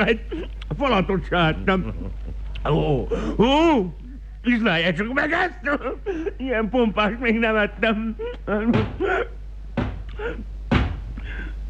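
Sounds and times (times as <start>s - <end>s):
speech: 0.0s - 9.4s
heavy hollow knocking on a door: 8.7s - 9.2s, 9.8s - 10.1s, 10.7s - 11.2s.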